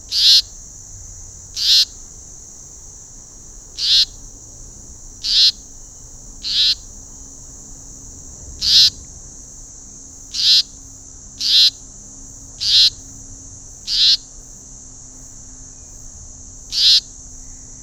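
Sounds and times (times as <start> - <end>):
constant high-pitched background hiss: 0.0 - 17.8
Leaden flycatcher Myiagra rubecula harsh buzzy rasping calls: 0.1 - 0.5, 1.5 - 2.6, 3.7 - 7.7, 8.6 - 9.0, 10.3 - 10.8, 11.4 - 11.8, 12.6 - 13.0, 13.9 - 14.2, 16.7 - 17.1.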